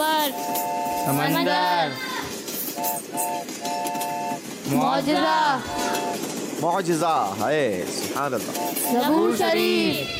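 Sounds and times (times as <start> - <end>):
train horn sound effect: 0.0 - 1.2, 2.7 - 4.5, 5.6 - 6.2, 8.5 - 9.0
speech: 1.0 - 2.2, 4.7 - 10.1.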